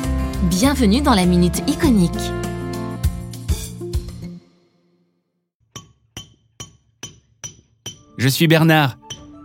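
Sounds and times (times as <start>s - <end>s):
speech: 0.4s - 2.5s, 8.2s - 9.1s
mallet striking chisel carving stone: 5.6s - 8.2s, 9.0s - 9.4s.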